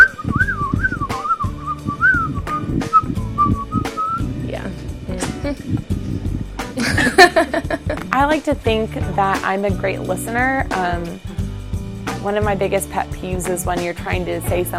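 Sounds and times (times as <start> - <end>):
person whistling a wavering melodic tune: 0.0 - 4.4
low busy music: 0.0 - 14.7
laughter: 6.8 - 8.0
speech: 8.2 - 11.3, 12.2 - 14.7.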